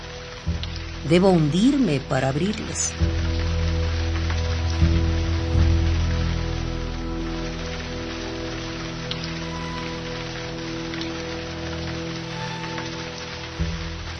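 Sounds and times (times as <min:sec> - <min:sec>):
low rumbling hum: 0:00.0 - 0:11.4
heavy rain falling: 0:00.0 - 0:14.1
speech: 0:01.0 - 0:03.2.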